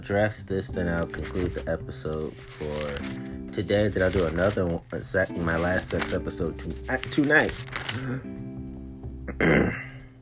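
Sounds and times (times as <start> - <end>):
speech: 0.0 - 8.4, 9.4 - 9.9
person recovering from allergies clearing throat: 9.3 - 10.0.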